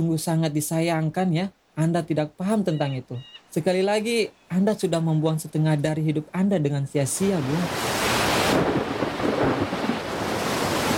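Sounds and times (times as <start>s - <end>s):
speech: 0.0s - 8.9s
heavy steady rain in a thunderstorm: 7.1s - 10.9s
low rumbling thunder: 8.1s - 10.9s.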